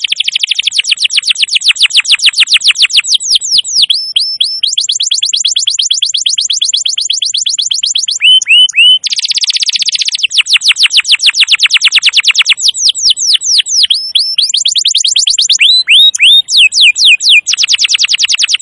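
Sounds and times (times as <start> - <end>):
canary trilling song: 0.0 - 18.5.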